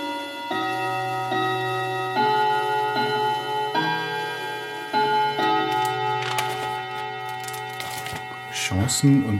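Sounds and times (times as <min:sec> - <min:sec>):
wall clock chiming a slow melody: 0:00.0 - 0:08.5
speech: 0:08.8 - 0:09.3.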